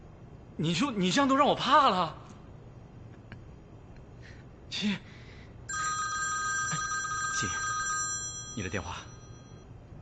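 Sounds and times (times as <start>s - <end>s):
speech: 0.6s - 2.3s, 4.8s - 5.1s, 8.6s - 9.1s
telephone ringing with a bright repeating electronic tone: 5.7s - 9.7s.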